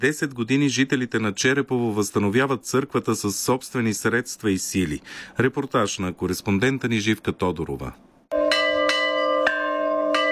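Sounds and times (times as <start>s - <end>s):
speech: 0.0s - 8.1s
village church bell ringing festively: 8.3s - 10.3s.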